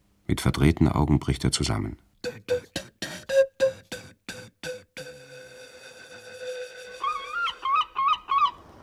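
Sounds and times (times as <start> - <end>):
speech: 0.3 - 2.6
seagulls crying: 7.0 - 8.6.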